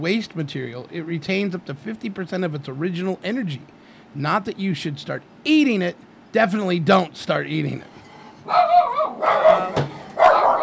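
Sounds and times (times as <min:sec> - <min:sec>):
speech: 0:00.0 - 0:09.8
dogs barking and yelping: 0:08.4 - 0:10.6.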